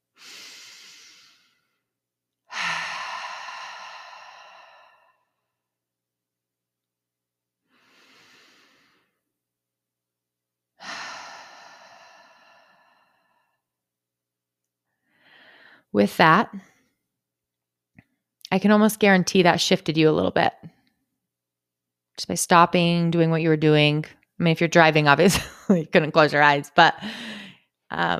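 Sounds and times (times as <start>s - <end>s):
deep breathing in and out: 0.1s - 1.9s, 2.5s - 5.6s, 7.6s - 9.2s, 10.8s - 13.7s, 15.0s - 15.9s, 27.0s - 27.7s
speech: 15.9s - 16.7s, 18.5s - 20.7s, 22.2s - 28.1s.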